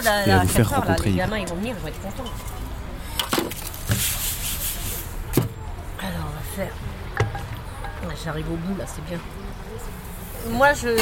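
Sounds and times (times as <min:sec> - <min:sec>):
speech: 0:00.0 - 0:02.6, 0:06.1 - 0:07.0, 0:08.0 - 0:10.9
spatula scraping taps against a hot griddle: 0:03.7 - 0:05.2.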